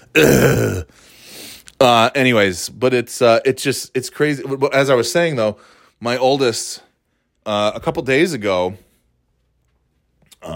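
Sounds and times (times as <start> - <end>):
loud gravelly throat-clearing grunt: 0.0 - 0.9
speech: 0.2 - 1.0, 1.8 - 8.8.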